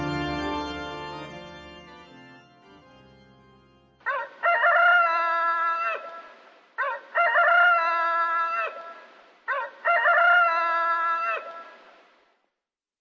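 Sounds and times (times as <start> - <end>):
rooster crowing at night atop a church dome: 4.0 - 11.8.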